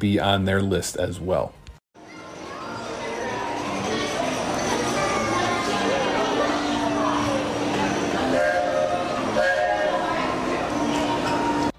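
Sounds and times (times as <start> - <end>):
speech: 0.0 - 1.6
rumbling rail and station noise: 3.4 - 11.7
steam train whistle blasts: 8.3 - 10.1.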